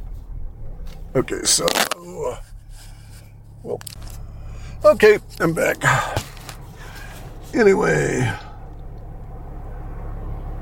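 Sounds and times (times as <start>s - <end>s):
road traffic passing: 0.0s - 10.5s
speech: 1.2s - 2.5s, 3.6s - 4.2s, 4.8s - 6.2s, 7.5s - 8.4s.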